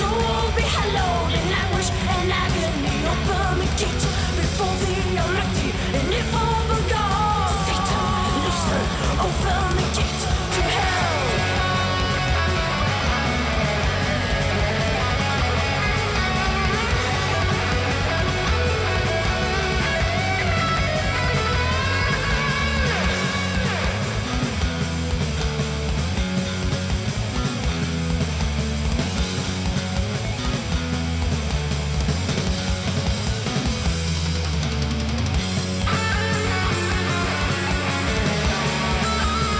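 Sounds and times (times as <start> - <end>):
shouted heavily reverberated heavy metal vocal: 0.0 - 24.4
distorted heavy metal guitars: 0.0 - 39.5
pounding heavy metal drums: 0.0 - 39.5.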